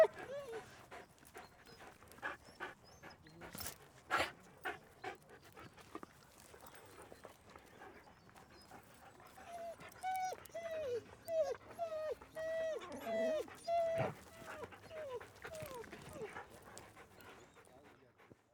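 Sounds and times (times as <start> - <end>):
Siberian Husky panting: 0.0 - 6.6, 7.2 - 18.3
Siberian Husky short falling whines: 9.6 - 16.3.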